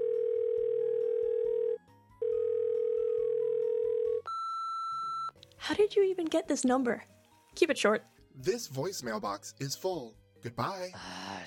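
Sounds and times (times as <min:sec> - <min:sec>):
outgoing phone call electronic ringing tone: 0:00.0 - 0:05.3
speech: 0:05.6 - 0:11.4.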